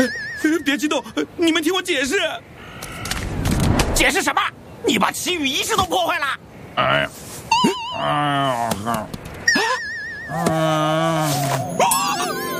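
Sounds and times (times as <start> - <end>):
speech: 0.0 - 2.5, 4.0 - 9.2, 10.3 - 12.4
bear whining and groaning: 7.5 - 12.4.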